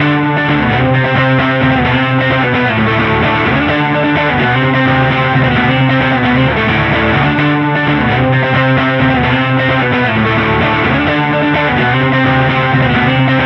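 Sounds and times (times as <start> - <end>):
electric guitar cinematic trailer loop: 0.0 - 13.4.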